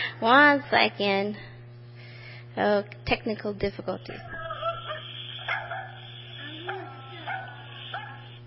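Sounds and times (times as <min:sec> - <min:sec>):
steady low hum: 0:00.0 - 0:08.4
speech: 0:00.2 - 0:01.5, 0:02.6 - 0:04.4
dog barking: 0:04.1 - 0:08.4.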